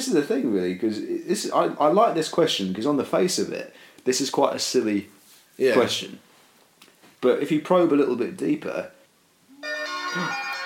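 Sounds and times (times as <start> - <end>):
speech: 0.0 - 6.3, 7.2 - 9.0, 10.1 - 10.4
mobile phone ringtone with bright melodic ring: 9.6 - 10.6.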